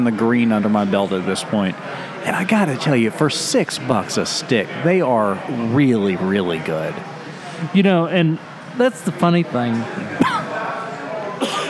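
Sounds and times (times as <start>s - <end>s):
speech: 0.0s - 10.4s
person coughing against the microphone: 10.1s - 10.5s, 11.4s - 11.6s.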